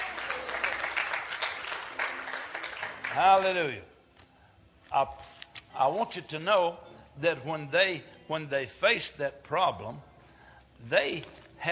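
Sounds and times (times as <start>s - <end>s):
congregation clapping hands: 0.0s - 3.8s
speech: 3.2s - 3.9s, 4.9s - 10.1s, 10.8s - 11.7s.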